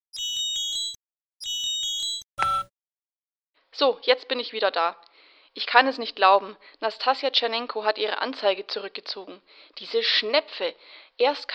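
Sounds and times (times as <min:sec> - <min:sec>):
telephone ringing with an incoming call: 0:00.0 - 0:02.7
electronic tone: 0:00.1 - 0:02.7
speech: 0:03.8 - 0:11.5.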